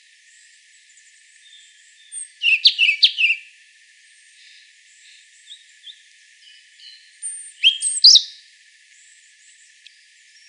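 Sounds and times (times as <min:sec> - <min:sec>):
European robin Erithacus rubecula song: 0:02.0 - 0:03.5, 0:04.4 - 0:08.4.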